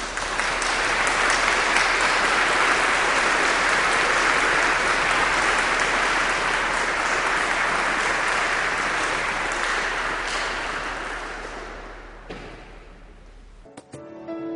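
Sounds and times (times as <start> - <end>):
large crowd applause: 0.0 - 13.1.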